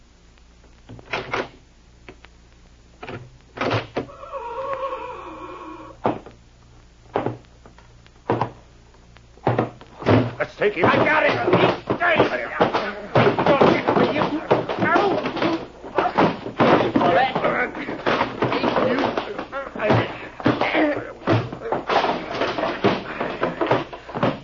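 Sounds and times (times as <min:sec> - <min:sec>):
thumps and slams of a fight: 0:06.0 - 0:06.4, 0:07.1 - 0:07.5, 0:08.2 - 0:08.6, 0:09.4 - 0:24.4
people grunting and shouting in a scuffle: 0:10.5 - 0:24.3
speech: 0:10.6 - 0:12.7.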